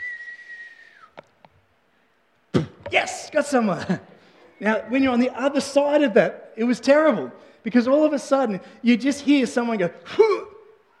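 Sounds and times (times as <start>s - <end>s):
voice imitating the whistling of a thrown foam vortex ball: 0.0s - 1.2s
speech: 2.9s - 10.4s.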